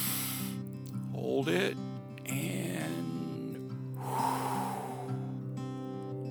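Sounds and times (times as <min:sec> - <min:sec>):
deep breath in through the nose and out through the mouth: 0:00.0 - 0:00.7, 0:03.9 - 0:06.0
speech: 0:01.2 - 0:03.2.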